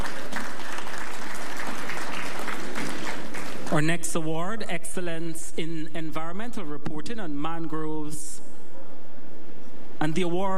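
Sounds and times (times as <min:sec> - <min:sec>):
audience applause: 0:00.0 - 0:03.7
speech: 0:03.7 - 0:08.4, 0:10.0 - 0:10.5.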